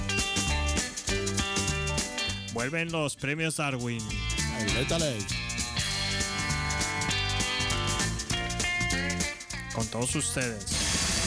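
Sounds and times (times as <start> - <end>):
upbeat radio show theme jingle with full band: 0.0 - 3.1, 4.0 - 11.2
speech: 2.6 - 5.4, 9.8 - 10.8.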